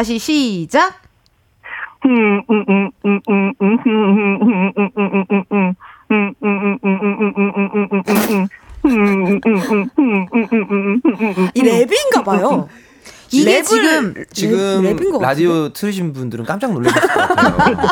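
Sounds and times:
speech: 0.0 - 1.0, 2.0 - 17.9
person humming a fast choppy song melody for a humming quiz: 2.1 - 11.6
laughter: 8.8 - 11.6, 16.8 - 17.9.

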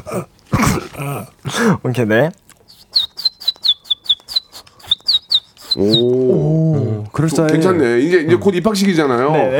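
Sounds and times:
speech: 0.1 - 0.4, 1.0 - 2.4, 7.2 - 9.5
child imitating a baby chick peeping on a radio broadcast: 2.8 - 6.4.

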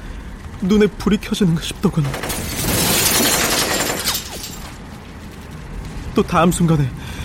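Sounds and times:
quieter rumbling background: 0.0 - 7.2
speech: 0.6 - 2.5, 6.2 - 7.0
car window glass shattering: 2.0 - 4.8.

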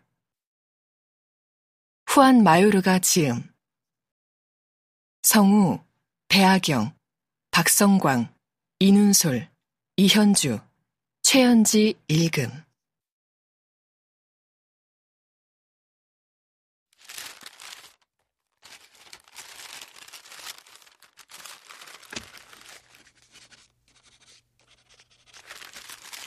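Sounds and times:
speech: 2.2 - 3.5, 5.2 - 7.0, 7.6 - 10.7, 11.3 - 12.6
paper sheets rustling: 17.0 - 26.2
red pen scratching and scribbling across handwritten paper pages: 23.0 - 25.6.

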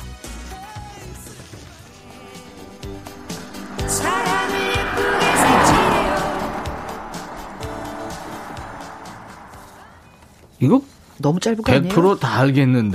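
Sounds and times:
car passing on a road: 1.8 - 10.6
speech: 10.6 - 12.9.

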